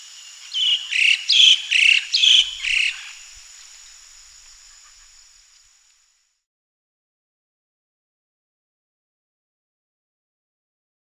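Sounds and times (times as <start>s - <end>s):
faint background hiss: 0.0s - 6.4s
Moluccan starling squeaky slurred calls: 0.6s - 3.3s.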